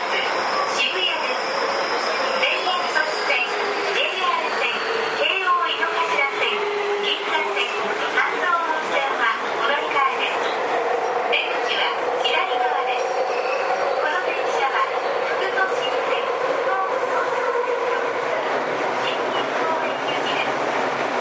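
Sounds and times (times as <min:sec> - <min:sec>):
Tokyu 5050 series commuter train rattling on the Toyoko and Minatomirai lines: 0:00.0 - 0:21.2.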